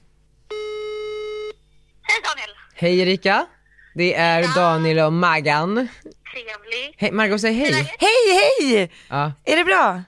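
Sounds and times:
telephone ringing tone while someone places a call: 0.5s - 1.6s
speech: 2.8s - 10.0s.

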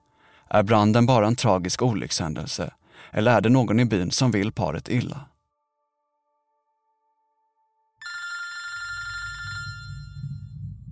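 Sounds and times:
speech: 0.5s - 5.3s
telephone bell ringing with a rapid metallic trill: 8.0s - 10.5s
low rumbling noise: 9.5s - 10.9s.

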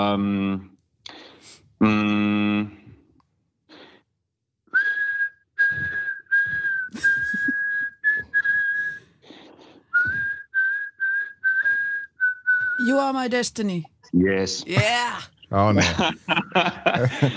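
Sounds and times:
speech: 0.0s - 0.7s, 1.4s - 2.8s, 13.1s - 17.3s
person whistling a song melody: 4.7s - 9.2s, 9.9s - 12.8s
laughter: 6.9s - 7.7s, 15.6s - 17.3s.

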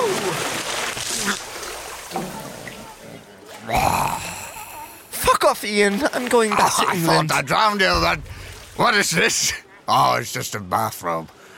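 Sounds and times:
heavy splash of person jumping into a pool: 0.0s - 2.7s, 8.0s - 8.8s
water churning and sloshing: 0.0s - 9.8s
speech: 5.5s - 11.4s.

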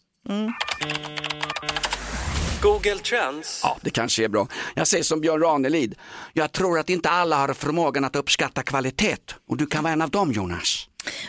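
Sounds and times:
speech: 0.3s - 1.9s, 2.6s - 11.2s
computer keyboard typing: 0.6s - 2.2s.

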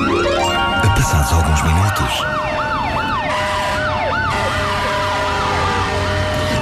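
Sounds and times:
fire engine siren wailing: 0.0s - 6.6s
speech: 1.0s - 2.5s.

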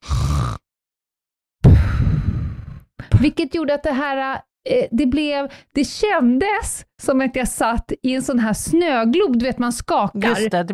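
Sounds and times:
voice imitating a bearded man snoring on a train: 0.0s - 0.7s
speech: 3.2s - 10.7s.

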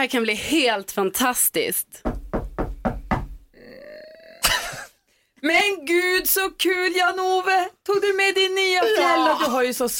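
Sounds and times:
speech: 0.0s - 2.1s, 5.4s - 9.9s
knocking on a door: 2.0s - 3.5s.

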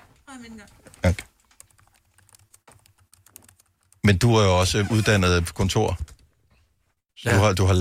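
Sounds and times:
speech: 0.4s - 1.3s, 4.1s - 6.1s, 7.2s - 7.7s
typing on a computer keyboard: 0.5s - 4.0s.

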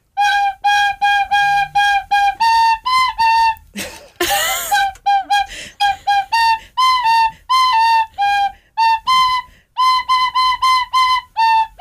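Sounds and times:
tin whistle playing a bright bouncy pop melody: 0.1s - 3.7s, 4.4s - 11.7s
breathy burst from a tin whistle: 5.4s - 7.5s.

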